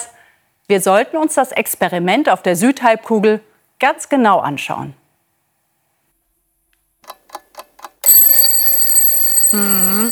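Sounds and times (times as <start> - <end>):
speech: 0.7 - 5.0, 9.5 - 10.1
alarm clock ringing: 8.0 - 10.1.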